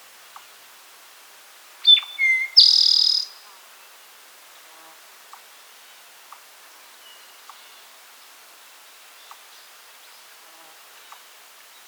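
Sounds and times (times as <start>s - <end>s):
Eastern towhee Pipilo erythrophthalmus singing whistled notes and a buzzy trill: 1.8s - 3.4s.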